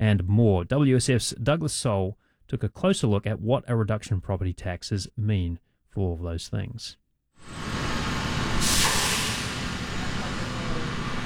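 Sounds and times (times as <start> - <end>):
speech: 0.0 - 7.6
fire truck engine rumble backing out of a fire station: 7.5 - 11.2
fire truck air brakes hissing: 8.5 - 10.8.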